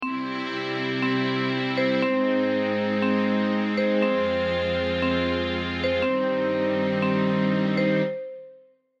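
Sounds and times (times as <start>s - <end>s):
common chords: 0.0s - 8.7s.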